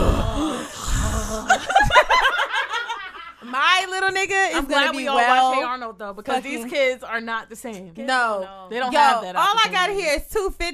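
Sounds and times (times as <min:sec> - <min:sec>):
voice imitating hard heavy breathing: 0:00.0 - 0:01.6
laughter: 0:01.2 - 0:03.5
speech: 0:04.2 - 0:10.7.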